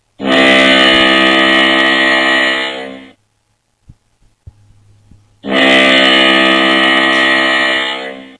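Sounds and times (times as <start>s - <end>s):
foghorn: 0.2s - 3.2s, 5.4s - 8.3s.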